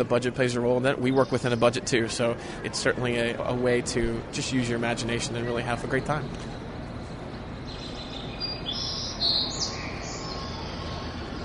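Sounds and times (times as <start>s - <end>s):
speech: 0.0s - 6.6s
recorded birdsong played through loudspeakers: 0.0s - 11.4s
whistled bird call: 7.8s - 11.4s.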